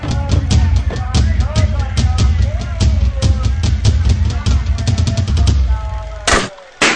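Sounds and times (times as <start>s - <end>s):
busy rhythmic background: 0.0s - 6.9s
balloon bursting at a balloon-shooting stall: 6.3s - 6.9s
toy-gun shot at a balloon-shooting stall: 6.3s - 6.9s.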